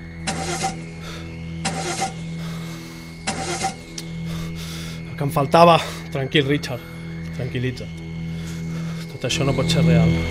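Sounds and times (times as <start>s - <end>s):
car engine cranking: 0.3s - 0.9s, 1.7s - 2.2s, 3.3s - 3.9s
speech: 5.2s - 8.0s, 9.2s - 10.2s.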